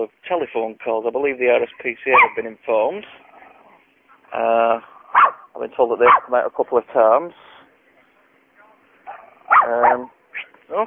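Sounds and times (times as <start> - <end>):
speech: 0.0 - 3.2, 4.3 - 7.5, 9.6 - 10.8
dog barking outdoors: 2.1 - 2.4, 5.1 - 6.4, 9.1 - 10.5.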